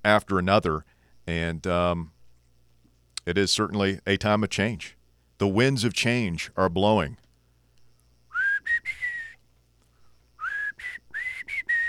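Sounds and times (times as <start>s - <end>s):
speech: 0.0s - 2.2s, 3.2s - 7.2s
person whistling a tune: 8.3s - 9.4s, 10.4s - 11.8s.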